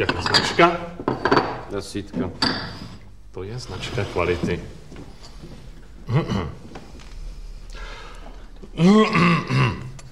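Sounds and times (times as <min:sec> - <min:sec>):
speech: 0:00.0 - 0:00.9, 0:01.8 - 0:02.7, 0:03.4 - 0:04.8, 0:06.1 - 0:06.6, 0:08.8 - 0:09.8
person coughing: 0:06.1 - 0:06.6, 0:08.8 - 0:10.0.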